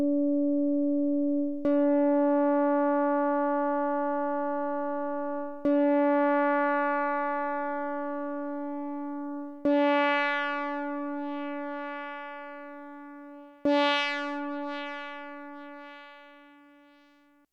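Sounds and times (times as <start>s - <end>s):
nonlinear string sound: 0.2s - 17.0s.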